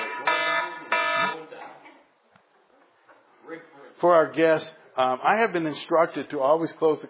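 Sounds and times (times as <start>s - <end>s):
alarm going off to end class: 0.0s - 1.4s
speech: 4.0s - 7.0s.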